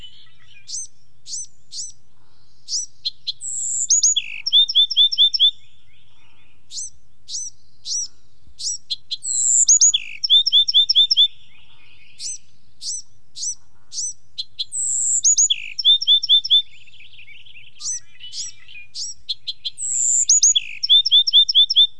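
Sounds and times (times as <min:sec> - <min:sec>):
Bewick's wren: 0:00.0 - 0:21.9.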